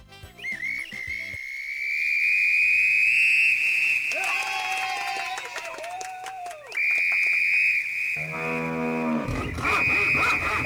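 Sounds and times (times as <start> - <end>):
whistle blown to call cattle: 0.0 - 10.6
cattle mooing: 8.2 - 10.6.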